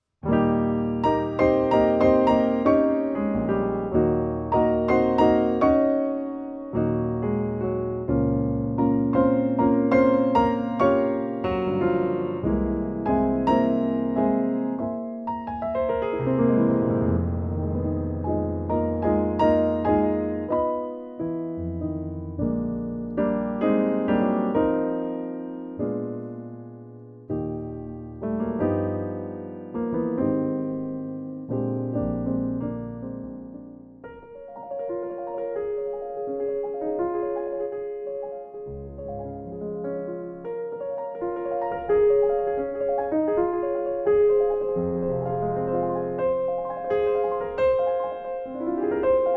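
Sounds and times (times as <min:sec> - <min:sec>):
classical cinematic rock piano music: 0:00.2 - 0:49.3.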